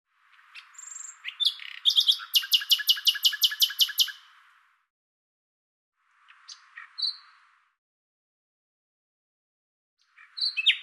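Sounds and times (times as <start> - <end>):
common nightingale song with rattling notes and thin whistle: 0.3 - 4.4, 6.3 - 7.4, 10.0 - 10.8.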